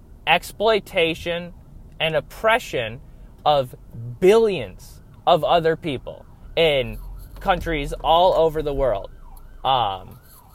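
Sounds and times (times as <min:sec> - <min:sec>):
speech: 0:00.3 - 0:10.2
ambulance siren wail: 0:03.6 - 0:10.5.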